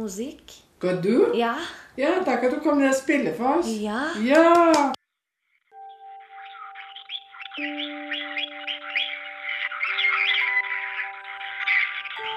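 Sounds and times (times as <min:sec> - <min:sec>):
speech: 0:00.0 - 0:05.0
steady electronic-sounding tones: 0:05.4 - 0:12.3
parrots chirping and squawking in a bird shop: 0:05.8 - 0:12.3.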